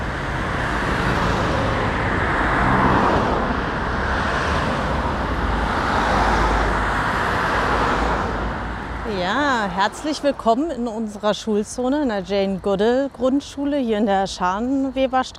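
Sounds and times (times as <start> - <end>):
cars rushing past on the busy four-lane Frankfurter Allee: 0.0 - 11.2
heavier vehicles passing: 0.0 - 15.3
speech: 9.8 - 15.3.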